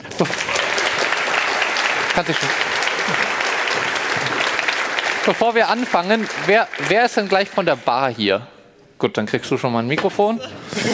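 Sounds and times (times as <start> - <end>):
large audience applauding: 0.0 - 8.2
speech: 0.2 - 0.5, 2.2 - 4.3, 5.2 - 10.9.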